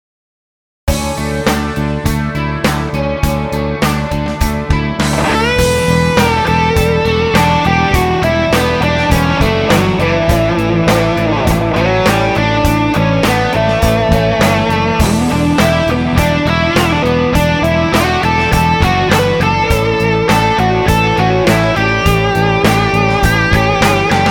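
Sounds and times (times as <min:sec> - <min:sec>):
guitar through Celestion G12K 100 1x12 speaker cabinet: 0:00.9 - 0:24.2.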